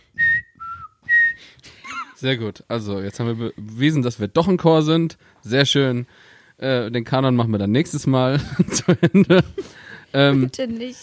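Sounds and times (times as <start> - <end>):
short shrill whistle tones rising and falling in pitch: 0.1 - 1.4
laughter: 1.6 - 2.2, 8.3 - 9.8
speech: 2.2 - 11.0.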